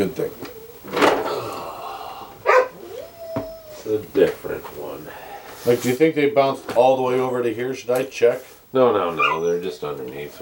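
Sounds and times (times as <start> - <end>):
speech: 0.0 - 0.3, 3.9 - 10.4
dog barking at a door: 2.4 - 3.9, 9.0 - 9.6.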